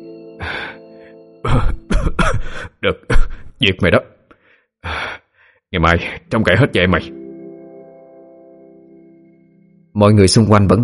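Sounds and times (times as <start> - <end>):
man in a choking coughing fit: 1.4 - 3.6
speech: 1.5 - 1.8, 2.8 - 4.1, 5.7 - 7.2, 10.0 - 10.8.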